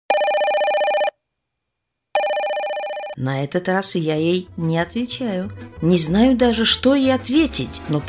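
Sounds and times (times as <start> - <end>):
telephone ringing loudly inside a car: 0.1 - 1.2, 2.2 - 3.2
speech: 3.2 - 8.0.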